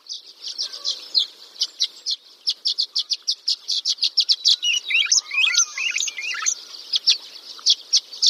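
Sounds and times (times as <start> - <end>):
violet-green swallow warbling twitter: 0.0 - 8.2
violet-green swallow chirps and calls: 2.6 - 8.2.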